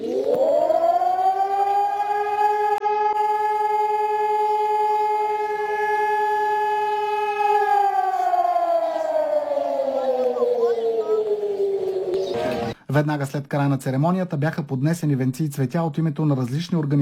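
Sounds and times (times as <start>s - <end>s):
civil defense sirens sounding across Bulgaria as an acoustic signal of tribute: 0.0s - 12.8s
speech: 13.0s - 17.0s.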